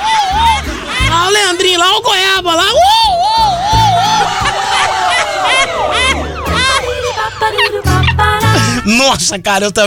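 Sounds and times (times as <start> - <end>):
laughter: 0.0 - 2.0, 2.7 - 9.1
crowd noise: 0.0 - 9.0
traffic rumble: 2.2 - 8.9
police siren wailing: 2.8 - 9.0
speech: 9.0 - 9.8.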